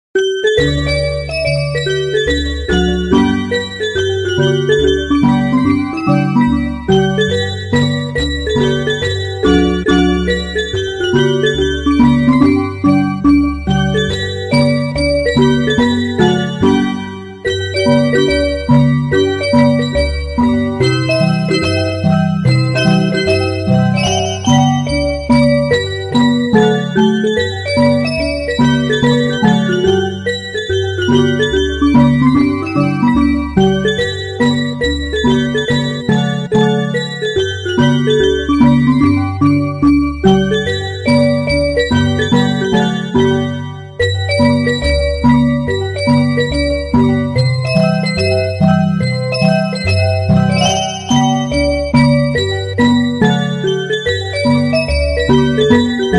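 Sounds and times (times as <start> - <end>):
ice cream truck music: 0.2 - 56.1.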